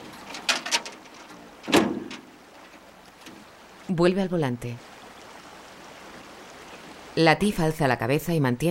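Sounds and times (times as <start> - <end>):
van door shut by the driver: 1.6 - 2.3
speech: 3.9 - 4.9, 7.2 - 8.7.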